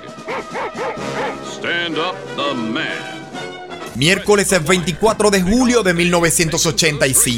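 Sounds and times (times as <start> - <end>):
dog barking: 0.2 - 1.6
speech: 1.8 - 3.2, 4.0 - 7.3.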